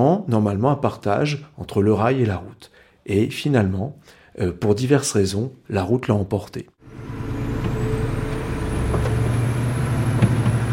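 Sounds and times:
speech: 0:00.0 - 0:07.2
heavy truck engine rumbling: 0:06.8 - 0:10.7.

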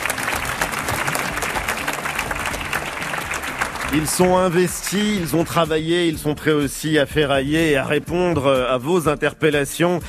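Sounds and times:
large audience applauding in a hall in Saint-Brieuc: 0:00.0 - 0:05.6
speech: 0:03.9 - 0:10.0.

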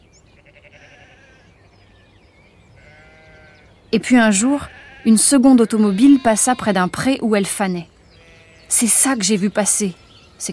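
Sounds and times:
steady outdoor hiss: 0:00.0 - 0:10.5
sheep bleating: 0:00.4 - 0:01.5, 0:02.8 - 0:03.7, 0:04.4 - 0:07.0, 0:08.2 - 0:09.0
speech: 0:03.9 - 0:07.9, 0:08.7 - 0:10.5.

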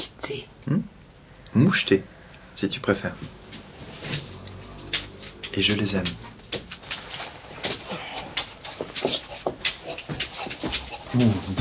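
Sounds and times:
speech: 0:00.3 - 0:00.9, 0:01.5 - 0:03.4, 0:05.6 - 0:06.3, 0:11.1 - 0:11.6
light rustling and movement: 0:02.4 - 0:11.6
dog whimpering and panting excitedly: 0:03.8 - 0:11.6.

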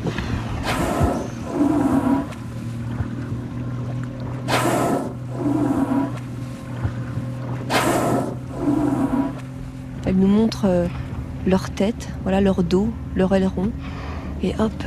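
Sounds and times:
whales blowing near a boat: 0:00.0 - 0:11.4
lapping water: 0:00.0 - 0:11.5
steady low hum of a boat engine: 0:00.0 - 0:14.8
speech: 0:10.2 - 0:14.8.

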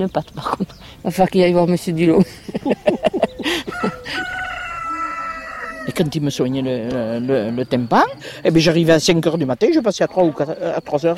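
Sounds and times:
speech: 0:00.0 - 0:04.3, 0:06.0 - 0:11.1
laughter: 0:02.1 - 0:04.6
rooster crowing: 0:03.0 - 0:06.2.

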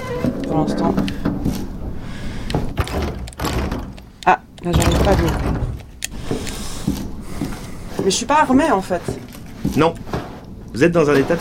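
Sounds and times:
video game door opening with a low grinding scrape: 0:00.0 - 0:06.7, 0:08.6 - 0:11.3
speech: 0:00.6 - 0:01.7, 0:04.3 - 0:05.7, 0:08.0 - 0:09.2, 0:09.8 - 0:10.2, 0:10.8 - 0:11.3
dull knocks of a door: 0:00.9 - 0:06.4.

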